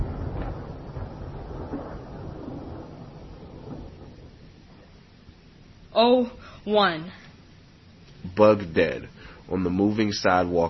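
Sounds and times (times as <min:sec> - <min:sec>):
thunder rumbling: 0:00.0 - 0:05.9
speech: 0:06.0 - 0:07.2, 0:08.4 - 0:10.6.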